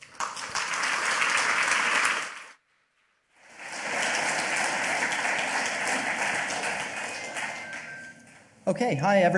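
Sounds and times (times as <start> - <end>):
large crowd applauding a speaker at a talk: 0.0 - 2.6, 3.4 - 8.1
speech: 8.7 - 9.3.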